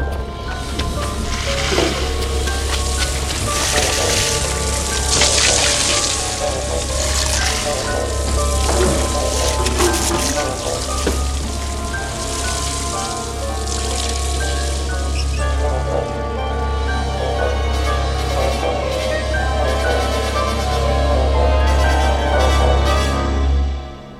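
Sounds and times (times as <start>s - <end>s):
low rumbling hum: 0.0s - 24.1s
water spraying from fire hoses: 0.6s - 22.7s.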